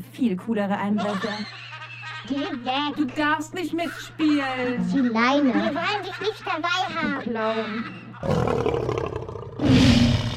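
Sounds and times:
speech: 0.2 - 1.6, 2.2 - 9.0
laughter: 0.8 - 8.2
lion roaring: 8.2 - 10.3.

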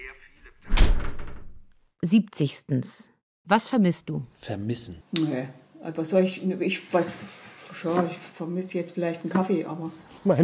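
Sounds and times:
door swinging shut with a heavy thud: 0.6 - 1.6
speech: 2.0 - 10.4.

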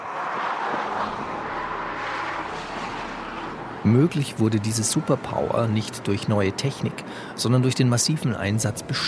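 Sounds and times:
tire roar from a moving electric car: 0.0 - 6.0
speech: 3.8 - 9.0.

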